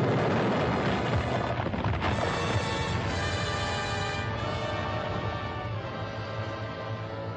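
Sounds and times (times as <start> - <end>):
massive underwater bomb explosion behind a concrete dam: 0.0 - 4.4
rumbling roar and rushing churn of water from burst concrete dam: 0.0 - 7.3.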